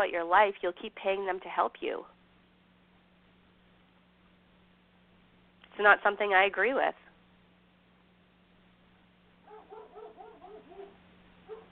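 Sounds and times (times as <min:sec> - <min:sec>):
speech: 0:00.0 - 0:02.2, 0:05.8 - 0:07.0
low steady hum: 0:00.0 - 0:11.7
dog barking at a passerby: 0:09.4 - 0:11.7.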